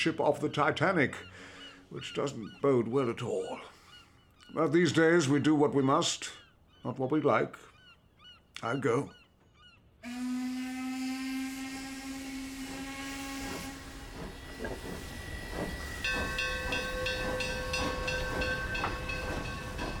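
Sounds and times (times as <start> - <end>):
speech: 0.0 - 3.7, 4.5 - 7.7, 8.6 - 9.2, 10.0 - 10.6
steam train whistle: 10.0 - 19.9
steam train engine chuffing: 11.2 - 19.9.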